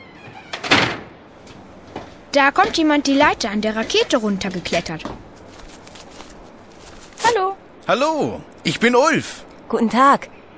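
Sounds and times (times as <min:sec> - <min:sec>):
door swinging open with a scrape: 0:00.0 - 0:01.1
speech: 0:02.3 - 0:05.2, 0:07.9 - 0:10.4.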